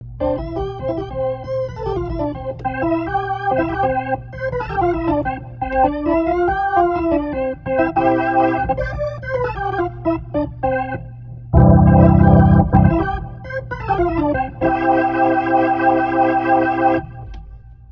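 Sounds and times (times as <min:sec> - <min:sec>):
jazzy rotary organ: 0:00.1 - 0:17.3.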